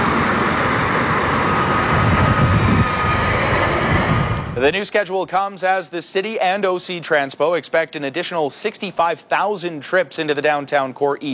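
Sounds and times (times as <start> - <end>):
O-Train light rail train rumbling past on its tracks: 0.0 - 5.1
speech: 4.6 - 11.3.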